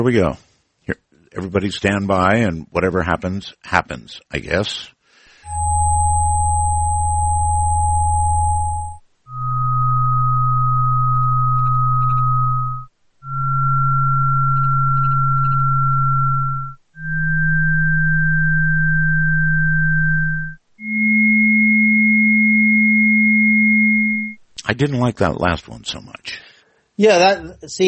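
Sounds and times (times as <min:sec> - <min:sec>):
speech: 0:00.0 - 0:05.8, 0:24.8 - 0:27.8
electronic sine wave tones stepping higher in pitch: 0:05.4 - 0:24.4.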